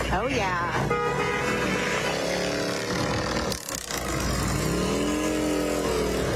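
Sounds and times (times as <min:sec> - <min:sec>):
speech: 0:00.1 - 0:00.9
group of motorcycles ridden by veterans revving past: 0:01.4 - 0:06.3.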